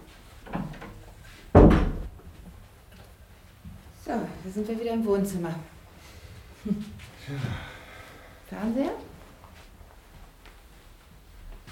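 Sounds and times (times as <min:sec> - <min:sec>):
bathroom door pushed shut in a home: 0:01.5 - 0:02.3
speech: 0:04.4 - 0:05.7, 0:06.6 - 0:07.7, 0:08.5 - 0:09.0.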